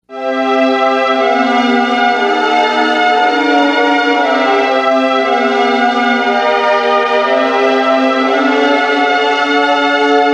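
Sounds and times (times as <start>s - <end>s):
chord progression: 0.1s - 10.3s.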